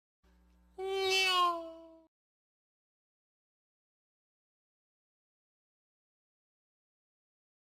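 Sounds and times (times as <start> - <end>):
cat meowing: 0.8 - 2.1.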